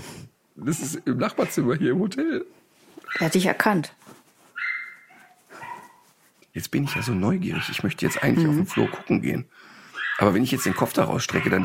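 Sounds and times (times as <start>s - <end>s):
speech: 0.6s - 4.0s, 6.6s - 11.6s
dog barking excitedly in neighboring room: 3.0s - 3.5s, 4.6s - 6.1s, 6.8s - 9.1s, 10.0s - 11.6s.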